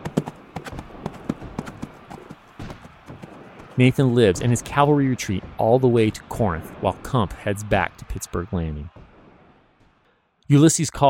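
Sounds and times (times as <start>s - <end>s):
horse hooves clip-clopping as the horse rides off: 0.0s - 3.8s
speech: 3.8s - 9.0s, 10.5s - 11.0s.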